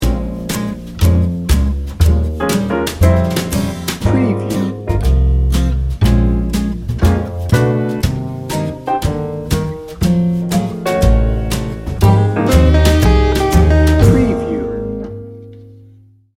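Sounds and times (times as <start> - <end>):
light jazz acoustic guitar riff, laid back edgy blues: 0.0 - 16.0.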